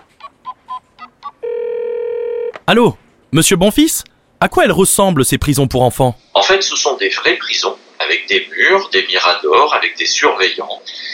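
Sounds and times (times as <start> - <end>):
steady loud telephone tone: 1.4 - 2.6
speech: 2.7 - 11.1.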